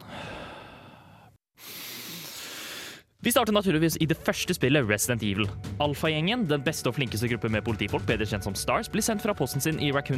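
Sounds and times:
breathy inhale through the nose: 0.0 - 3.1
slow exhale blown out through the mouth: 0.0 - 3.1
speech: 3.2 - 10.1.

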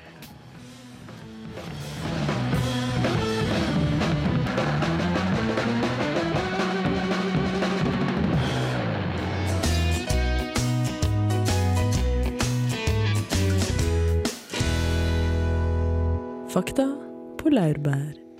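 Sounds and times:
recorded music track with melodic instruments over a driving beat on radio: 0.0 - 16.2
heavier bass and percussion: 1.5 - 16.1
speech: 16.6 - 18.2.

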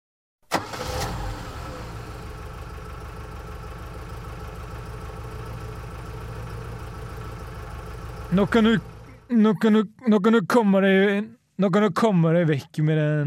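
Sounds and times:
car engine idling at a car workshop: 0.5 - 9.5
speech: 8.3 - 13.2.

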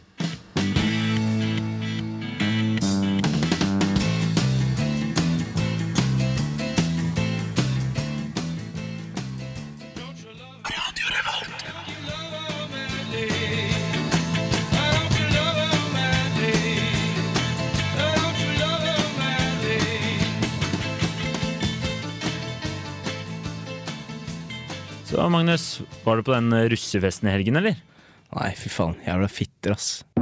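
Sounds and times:
1970s full-band rock song with drums, bass and organ: 0.0 - 10.5, 11.6 - 25.0
speech: 25.2 - 30.1.

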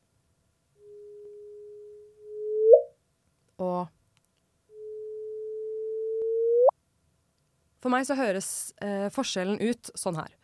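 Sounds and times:
sonified gravitational-wave chirp tone: 0.8 - 2.9, 4.8 - 6.7
speech: 7.8 - 10.4.

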